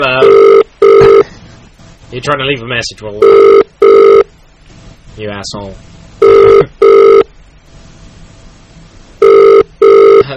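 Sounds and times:
ringback tone of an outgoing phone call: 0:00.2 - 0:01.2, 0:03.2 - 0:04.2, 0:06.2 - 0:07.3, 0:09.2 - 0:10.2
speech: 0:02.2 - 0:03.6, 0:05.2 - 0:06.0.

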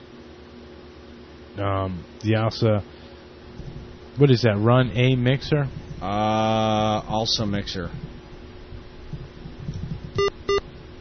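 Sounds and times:
low steady hum: 0:00.0 - 0:10.9
speech: 0:01.6 - 0:03.0, 0:04.2 - 0:08.0
short loud buzzy electronic beeps: 0:10.2 - 0:10.6.

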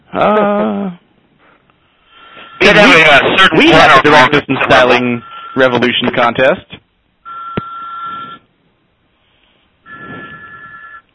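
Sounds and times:
speech: 0:00.1 - 0:01.0, 0:02.7 - 0:06.8
telephone ringing in electronic bursts during a live broadcast: 0:02.2 - 0:06.0, 0:07.2 - 0:08.4, 0:09.8 - 0:11.1.

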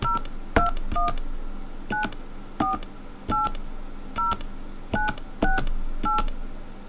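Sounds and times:
touch-tone keypad beeps entering a PIN on a phone: 0:00.0 - 0:01.2, 0:01.9 - 0:03.6, 0:04.2 - 0:04.4, 0:05.0 - 0:06.3
low hum: 0:00.0 - 0:06.8.

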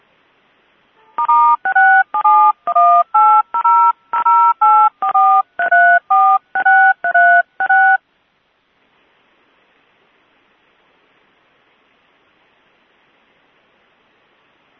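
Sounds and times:
touch-tone keypad dialing a toll-free information line: 0:01.2 - 0:08.0.

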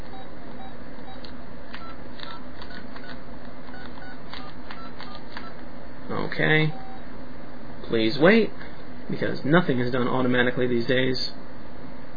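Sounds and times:
telephone keypad tones as a number is dialed: 0:00.0 - 0:05.6
speech: 0:06.4 - 0:06.8, 0:07.9 - 0:11.4.

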